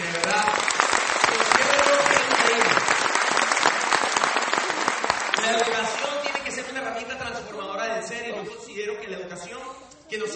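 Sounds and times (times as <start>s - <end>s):
crowd applauding: 0.0s - 6.8s.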